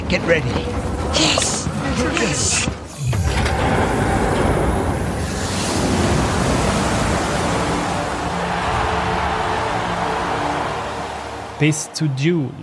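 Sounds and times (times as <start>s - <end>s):
speech: 0.1s - 2.8s, 11.6s - 12.6s
water gushing from opened floodgates: 4.0s - 11.7s.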